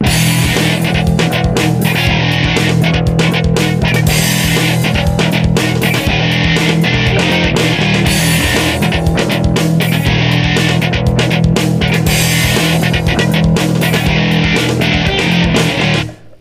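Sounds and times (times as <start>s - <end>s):
short funk rock style riff: 0.0s - 16.3s.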